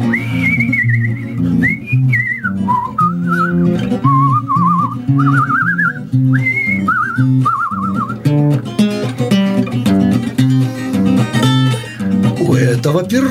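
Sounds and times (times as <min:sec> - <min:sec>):
person whistling wavering trilling phrases to call horses: 0:00.0 - 0:08.4
steady instrumental music: 0:00.0 - 0:13.3.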